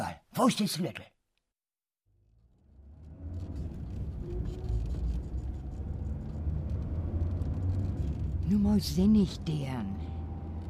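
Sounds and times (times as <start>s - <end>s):
speech: 0.4s - 1.1s, 8.5s - 10.1s
car engine starting and pulling away: 2.1s - 10.6s.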